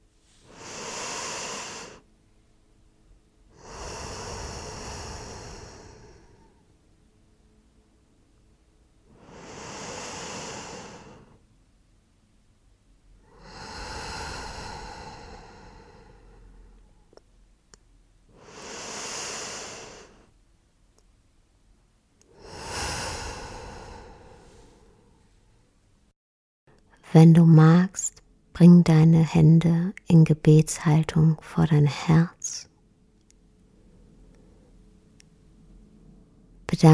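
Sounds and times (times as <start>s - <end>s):
slow deep breaths during a guided meditation: 0.4s - 2.0s, 3.5s - 6.7s, 9.1s - 11.4s, 13.2s - 17.1s, 18.3s - 20.3s, 22.2s - 25.5s
speech: 27.1s - 32.7s, 36.7s - 36.9s.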